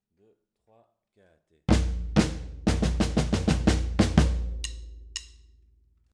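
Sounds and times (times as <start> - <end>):
batucada percussion interlude in triple time: 1.7 - 5.5.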